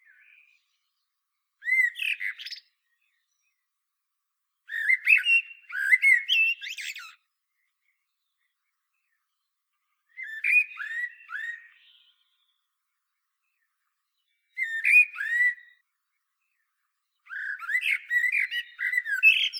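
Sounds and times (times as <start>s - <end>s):
Common blackbird Turdus merula singing fluty slurred phrases: 0.0s - 1.0s, 1.6s - 3.6s, 4.7s - 7.2s, 10.1s - 12.7s, 13.4s - 15.8s, 16.5s - 19.5s.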